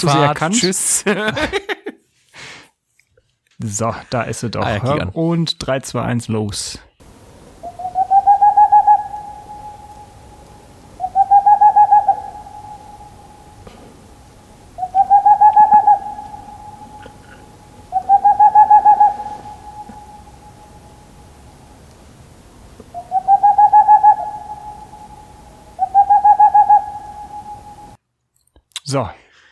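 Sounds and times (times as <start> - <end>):
speech: 0.0 - 1.8, 3.6 - 6.9
laughter: 0.0 - 2.0, 17.0 - 17.5
owl hooting: 7.0 - 28.0.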